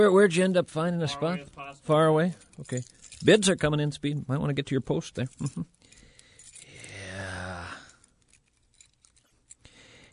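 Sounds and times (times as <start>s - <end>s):
speech: 0.0s - 5.8s
keys jingling and clinking: 2.2s - 3.8s, 5.1s - 10.1s.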